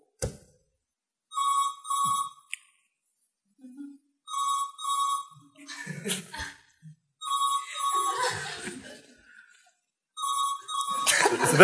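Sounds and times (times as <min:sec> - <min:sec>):
telephone ringing with a double-pulsed electronic trill: 0:01.3 - 0:02.5, 0:04.3 - 0:05.4, 0:07.2 - 0:08.6, 0:10.2 - 0:11.6
people chuckling and laughing: 0:05.6 - 0:07.0, 0:07.6 - 0:09.4, 0:10.9 - 0:11.6
speech: 0:06.0 - 0:06.2.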